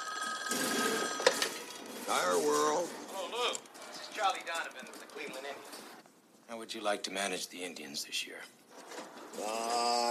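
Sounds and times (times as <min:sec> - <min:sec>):
telephone ringing: 0:00.0 - 0:01.8
busy room noise: 0:00.0 - 0:10.0
speech: 0:02.1 - 0:03.6, 0:04.2 - 0:08.6, 0:09.4 - 0:10.0.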